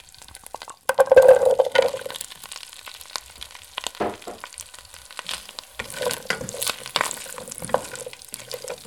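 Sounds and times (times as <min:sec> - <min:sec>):
radishes frying in sizzling butter: 0:00.0 - 0:08.8
stirring clatters: 0:00.6 - 0:02.2, 0:05.7 - 0:08.8.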